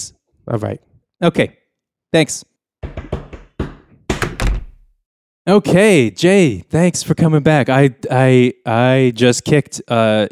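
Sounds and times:
speech: 0.5 - 2.5, 5.5 - 10.3
knocking on a door: 2.8 - 4.9.

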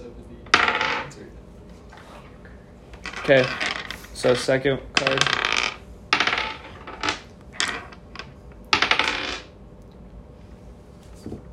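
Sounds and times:
plastic poker chips tossed into the pot for an ante: 3.0 - 9.5
speech: 3.3 - 5.5.

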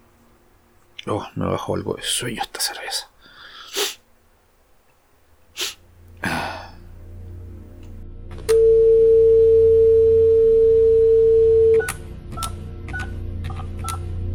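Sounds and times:
speech: 1.0 - 3.1
sharp breathy bursts: 2.0 - 7.0
steady telephone dial tone: 8.5 - 12.0
short clear telephone keypad beeps: 8.5 - 13.1.

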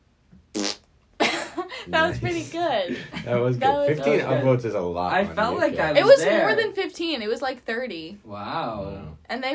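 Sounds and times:
buzzy fart noise made with the mouth: 0.5 - 0.9
speech: 1.8 - 9.5.

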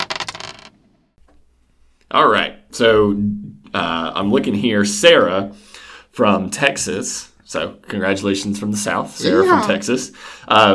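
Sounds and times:
dice clattering: 0.0 - 0.8
speech: 2.1 - 10.7.

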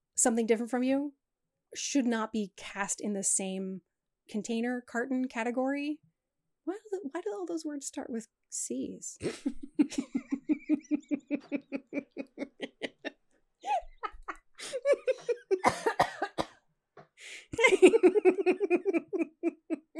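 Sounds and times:
speech: 0.2 - 10.3
person laughing: 9.2 - 16.4, 17.5 - 19.9
person coughing harshly: 14.6 - 16.6.

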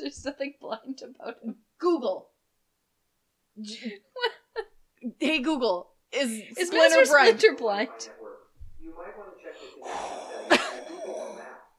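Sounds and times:
speech: 0.0 - 2.2, 3.6 - 4.4, 5.0 - 8.2
heavy breathing with raspy exhales: 9.4 - 11.7.

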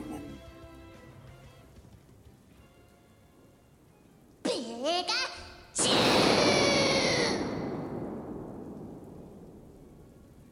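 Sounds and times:
rain: 0.0 - 10.5
thunder crash from a lightning strike: 5.8 - 10.5.

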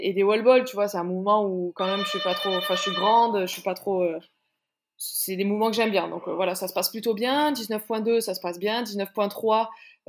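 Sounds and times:
speech: 0.0 - 4.4, 5.0 - 10.0
electronic doorbell ringing: 1.8 - 3.3.

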